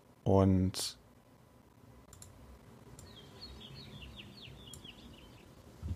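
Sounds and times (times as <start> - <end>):
speech: 0.2 - 1.0
faint clicks: 2.1 - 2.4
birds singing in quick high chirping phrases: 3.0 - 5.7.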